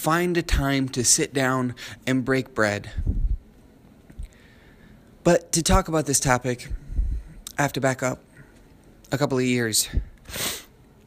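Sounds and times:
speech: 0.0s - 3.2s, 5.2s - 6.8s, 7.6s - 8.3s, 9.1s - 10.6s
breathy sniff through the nose: 10.3s - 10.7s.

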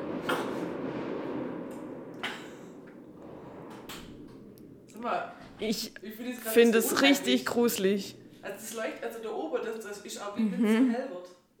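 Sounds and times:
loud fireworks explosions outside: 0.0s - 8.8s
constant low rumble: 0.0s - 10.4s
speech: 5.0s - 11.4s.

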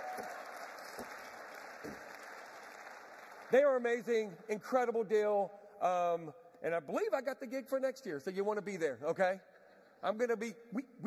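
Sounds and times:
crowd applauding: 0.0s - 4.1s
speech: 3.5s - 11.0s.

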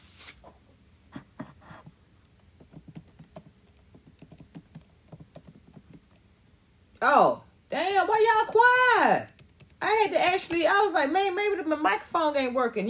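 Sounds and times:
typing on a computer keyboard: 2.4s - 6.3s, 9.2s - 9.8s
speech: 7.0s - 12.8s.

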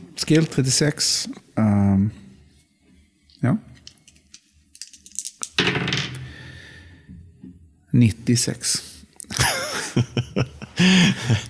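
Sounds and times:
speech: 0.3s - 2.2s, 3.4s - 3.7s, 7.9s - 8.9s, 10.0s - 11.4s
dice rolled for a skill check clattering onto a hard tabletop: 3.8s - 6.2s
laughter: 9.3s - 11.4s.

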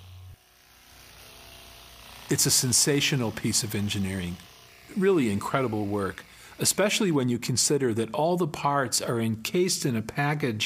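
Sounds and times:
tiny hummingbird-style drone hovering with buzzing whir: 0.0s - 6.6s
speech: 2.3s - 10.6s.

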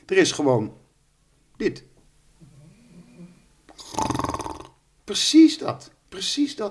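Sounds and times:
speech: 0.1s - 0.8s, 1.6s - 1.9s, 5.1s - 6.6s
dog snoring: 2.4s - 4.8s.

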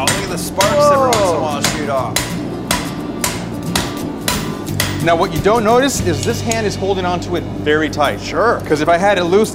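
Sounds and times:
hammer striking hot metal: 0.0s - 7.2s
low hum: 0.0s - 9.5s
speech: 5.0s - 9.5s.

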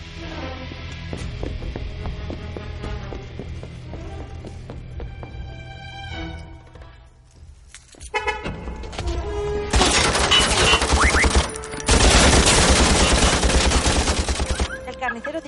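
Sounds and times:
car horns honking: 8.1s - 11.7s
rapid machine-gun fire: 9.8s - 14.8s.

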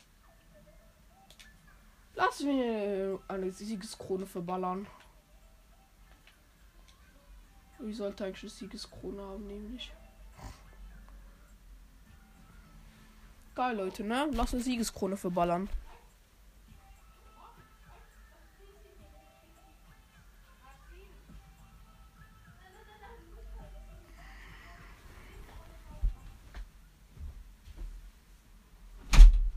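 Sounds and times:
speech: 2.2s - 5.0s, 7.8s - 10.0s, 13.6s - 15.9s
door pushed shut: 29.1s - 29.5s.

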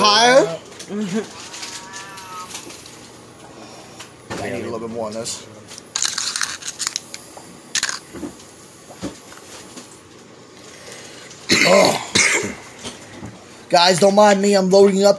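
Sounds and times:
speech: 4.9s - 5.8s, 11.7s - 12.1s, 13.7s - 15.1s
person coughing: 11.5s - 12.6s
person clearing throat: 11.5s - 12.7s.

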